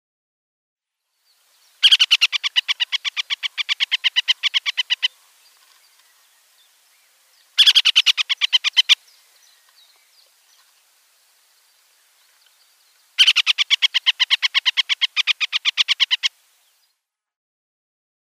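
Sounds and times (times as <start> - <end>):
male hen harrier: 1.7 - 10.9, 11.6 - 16.9.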